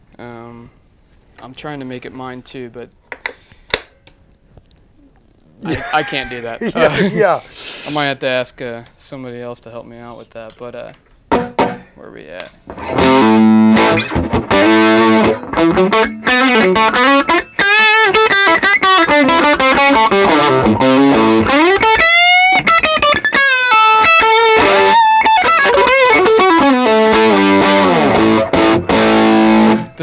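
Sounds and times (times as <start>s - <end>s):
speech: 0.2s - 0.8s, 1.4s - 3.0s, 5.6s - 11.0s, 12.0s - 14.4s, 15.6s - 17.3s
laughter: 5.6s - 7.6s
heavily distorted electric guitar with an ebony fretboard playing chords and lead lines: 12.7s - 30.0s.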